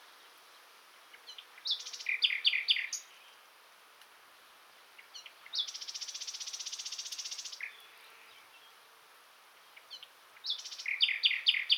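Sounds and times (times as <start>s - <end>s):
common nightingale Luscinia megarhynchos song: 1.0s - 3.5s, 4.9s - 8.8s, 9.6s - 11.7s.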